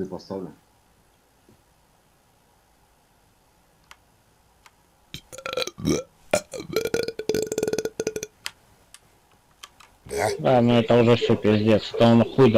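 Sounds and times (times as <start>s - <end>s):
speech: 0.0s - 0.6s, 5.8s - 6.8s, 10.2s - 12.5s
faint clicks: 3.8s - 4.0s, 8.4s - 10.0s
person burping a long rattling burp: 5.2s - 8.4s, 10.1s - 10.5s.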